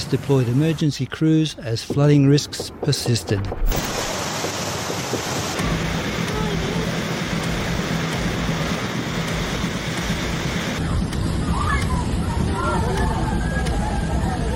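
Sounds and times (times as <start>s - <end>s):
speech: 0.1s - 4.2s
torrential rain pouring down: 3.7s - 14.5s.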